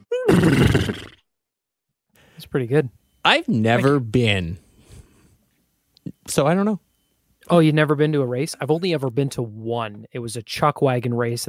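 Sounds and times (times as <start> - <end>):
horse whinnying: 0.1 - 1.2
speech: 2.5 - 4.6, 6.3 - 6.8, 7.5 - 11.4.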